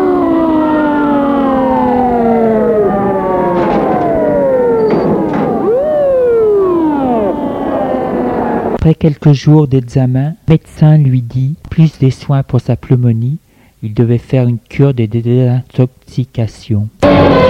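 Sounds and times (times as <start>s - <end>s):
ambulance siren wailing: 0.0s - 8.8s, 17.0s - 17.4s
speech: 9.0s - 17.4s.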